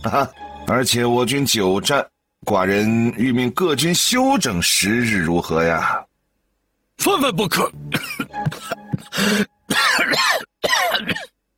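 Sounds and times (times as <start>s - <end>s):
speech: 0.0s - 6.1s, 7.0s - 11.3s
coughing fit after choking on tea: 7.6s - 11.4s.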